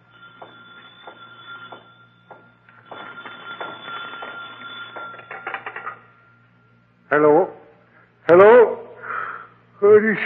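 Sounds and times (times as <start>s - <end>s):
old desk telephone bell ringing: 0.0s - 6.4s
speech: 7.1s - 7.6s, 10.0s - 10.2s.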